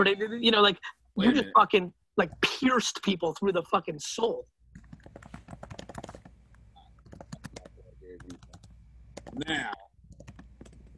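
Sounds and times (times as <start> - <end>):
speech: 0.0 - 4.6, 9.4 - 9.8
low steady hum: 0.0 - 10.9
rapid uneven typing on a computer keyboard: 4.8 - 6.4, 7.0 - 9.4, 10.1 - 10.9.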